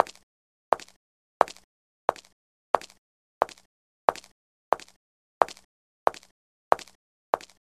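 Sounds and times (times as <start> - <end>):
footstep: 0.0 - 7.6.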